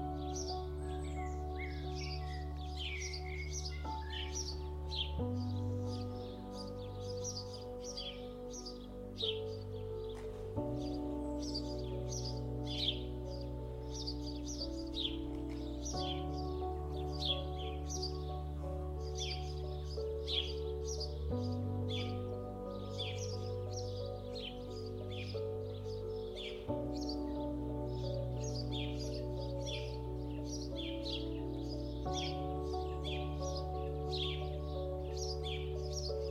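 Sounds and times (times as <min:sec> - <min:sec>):
countryside birds chirping and trilling: 0:00.0 - 0:36.3
soft sustained calming music with low chords: 0:00.0 - 0:36.3.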